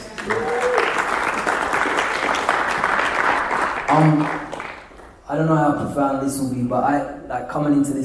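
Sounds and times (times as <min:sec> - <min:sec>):
crowd applauding: 0:00.0 - 0:05.2
speech: 0:00.2 - 0:00.6, 0:04.0 - 0:04.4, 0:05.3 - 0:08.0
whoop-like call: 0:00.2 - 0:01.1.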